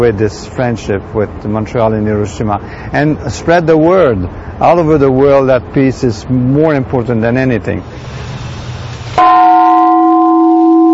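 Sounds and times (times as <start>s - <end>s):
speech: 0.0s - 8.4s
large bell struck in a garden at night: 9.2s - 10.9s.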